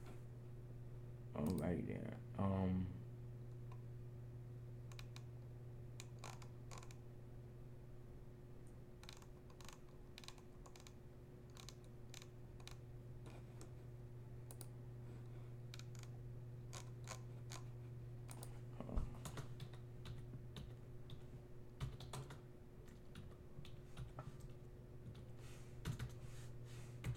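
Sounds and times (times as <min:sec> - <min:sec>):
constant low electrical hum: 0:00.0 - 0:27.1
speech: 0:01.4 - 0:03.0
typing on a computer keyboard: 0:04.9 - 0:05.2, 0:06.0 - 0:07.0, 0:09.0 - 0:12.8, 0:15.8 - 0:16.1, 0:19.2 - 0:26.2.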